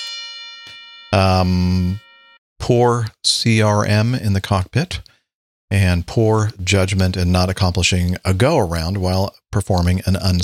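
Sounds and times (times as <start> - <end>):
bright bell ringing: 0.0 - 2.4
speech: 1.1 - 2.0, 2.7 - 5.1, 5.7 - 10.4.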